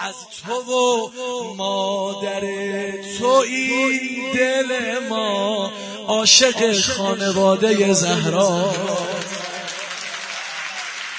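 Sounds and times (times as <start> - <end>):
speech: 0.0 - 9.1
audience clapping: 8.6 - 11.1
voice under applause: 8.6 - 11.1.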